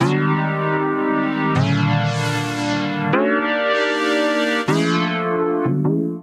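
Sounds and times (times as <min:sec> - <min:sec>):
D minor chords: 0:00.0 - 0:06.2.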